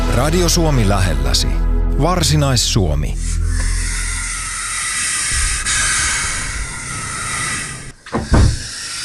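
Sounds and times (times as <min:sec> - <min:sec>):
speech: 0:00.2 - 0:03.8
European adder hissing: 0:03.1 - 0:09.0.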